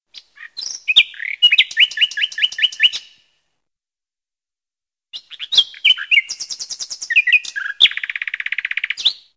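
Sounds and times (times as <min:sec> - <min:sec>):
nightingale singing long sweet chirps: 0:00.1 - 0:03.3, 0:05.1 - 0:09.3.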